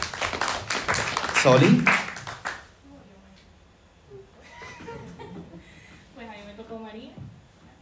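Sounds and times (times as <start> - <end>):
audience clapping: 0.0 - 2.7
speech: 1.4 - 2.0
audience laughter: 4.5 - 5.7.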